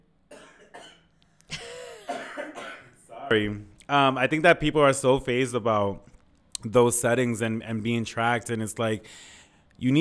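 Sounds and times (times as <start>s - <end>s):
throat clearing: 0.3s - 3.2s
person coughing with hacking bursts: 0.3s - 3.3s
speech: 3.3s - 10.0s.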